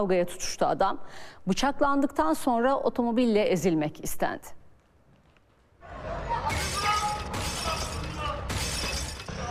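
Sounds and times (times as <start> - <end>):
speech: 0.0 - 4.6
shop window glass smashed with an axe: 6.5 - 9.4.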